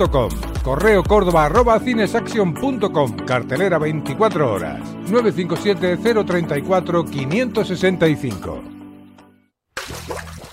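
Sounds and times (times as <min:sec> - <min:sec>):
speech: 0:00.0 - 0:08.7
water dripping and trickling: 0:09.8 - 0:10.5.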